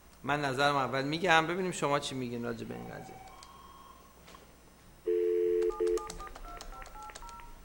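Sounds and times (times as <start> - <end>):
speech: 0.2 - 3.3
telephone ringing electronically: 5.1 - 7.4.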